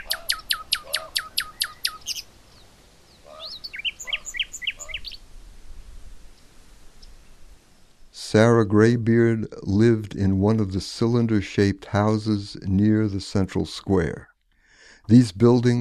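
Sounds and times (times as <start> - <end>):
birds singing outdoors: 0.0 - 5.2
soft hiss of noise: 0.0 - 15.8
speech: 8.3 - 14.3, 15.1 - 15.8.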